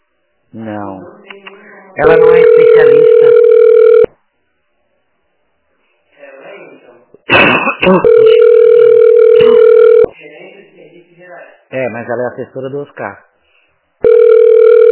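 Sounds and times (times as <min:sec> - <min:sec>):
speech: 0:00.5 - 0:01.4, 0:02.0 - 0:03.4, 0:12.1 - 0:13.3
telephone dial tone: 0:02.2 - 0:04.1, 0:08.1 - 0:10.1, 0:14.0 - 0:14.9.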